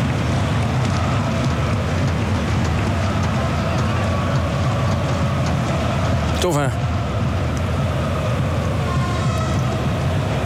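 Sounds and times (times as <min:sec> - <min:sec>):
train passing: 0:00.0 - 0:10.4
speech: 0:06.4 - 0:06.9.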